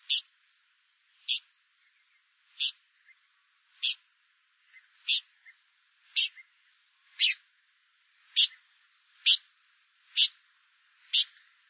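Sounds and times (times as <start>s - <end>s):
Blyth's pipit giving clipped high rasping calls: 0.0s - 0.3s, 1.3s - 1.5s, 2.6s - 2.8s, 3.8s - 4.0s, 5.1s - 5.3s, 6.2s - 6.4s, 7.2s - 7.4s, 8.4s - 8.6s, 9.2s - 9.4s, 10.2s - 10.4s, 11.1s - 11.4s.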